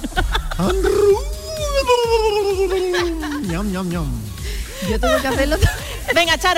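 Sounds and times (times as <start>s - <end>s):
laughter: 0.0s - 3.9s, 4.8s - 6.4s
speech: 0.6s - 1.0s, 3.5s - 6.5s
person imitating a fox howl: 0.6s - 3.4s.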